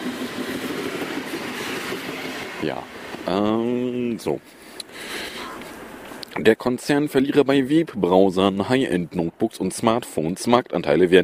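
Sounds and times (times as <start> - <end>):
S-Bahn commuter train rushing past in snow, kicking snow up: 0.0 - 6.2
speech: 2.6 - 4.6, 6.4 - 11.2.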